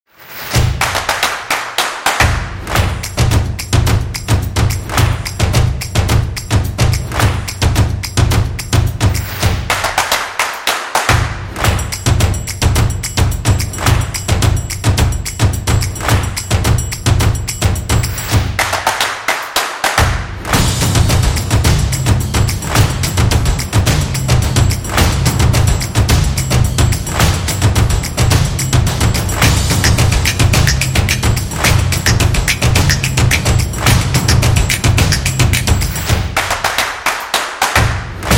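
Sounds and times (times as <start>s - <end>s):
clapping percussion: 0.4s - 38.3s.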